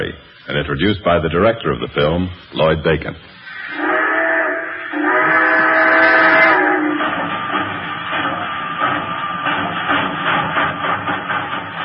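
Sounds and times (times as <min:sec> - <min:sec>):
speech: 0:00.0 - 0:03.8
train chugging as it pulls out of the station: 0:00.0 - 0:11.8
train whistle blasts: 0:03.5 - 0:07.2.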